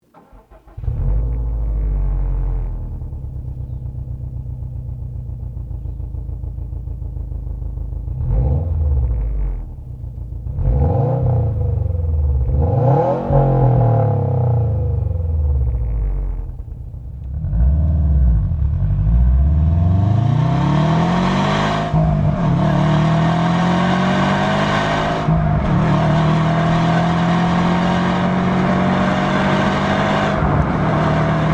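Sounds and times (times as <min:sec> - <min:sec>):
Subaru Impreza WRX STI engine: 0:00.0 - 0:31.5.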